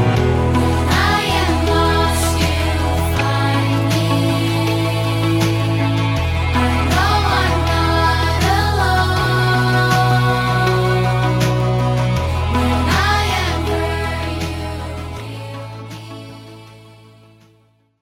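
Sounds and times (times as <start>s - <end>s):
contemporary vocal singing: 0.2s - 17.4s.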